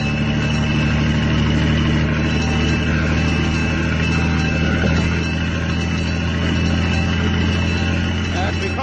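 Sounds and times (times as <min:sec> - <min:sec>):
fire engine driving through city streets: 0:00.0 - 0:08.8.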